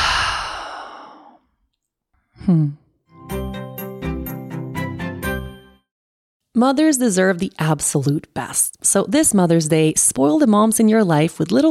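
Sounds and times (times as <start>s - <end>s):
brief low vocal tone: 0.0s - 1.4s
deep exhalation through the open mouth: 0.0s - 1.4s
speech: 2.4s - 2.8s, 6.6s - 11.6s.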